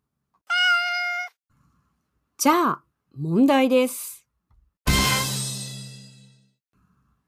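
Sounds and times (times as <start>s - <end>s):
cat meowing: 0.5s - 1.4s
speech: 2.4s - 4.2s.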